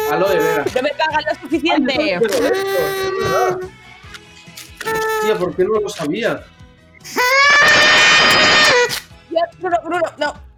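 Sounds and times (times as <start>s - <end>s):
party blower horn blown at a birthday celebration: 0.0s - 0.8s, 2.4s - 3.6s, 4.8s - 5.5s, 7.0s - 9.0s
speech: 0.1s - 3.8s, 4.9s - 7.4s, 9.3s - 10.5s.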